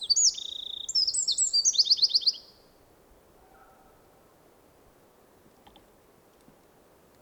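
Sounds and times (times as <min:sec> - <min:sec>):
Eurasian wren song: 0:00.0 - 0:02.6.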